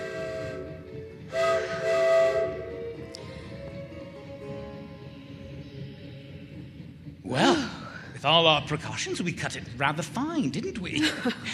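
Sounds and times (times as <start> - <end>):
steam whistle: 0.0 - 3.0
train gathering speed leaving a station: 0.0 - 11.4
speech: 8.2 - 11.5
laughter: 10.8 - 11.5.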